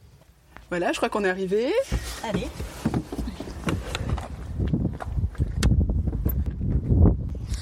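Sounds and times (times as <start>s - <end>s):
speech: 0.7s - 3.0s
strong wind buffeting the microphone outdoors on a farm: 3.1s - 7.6s.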